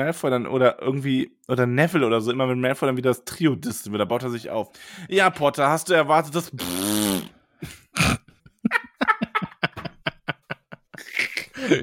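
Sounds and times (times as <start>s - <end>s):
speech: 0.0s - 8.1s
fart noise imitated with the mouth by a voice: 6.5s - 8.3s
laughter: 8.5s - 11.8s.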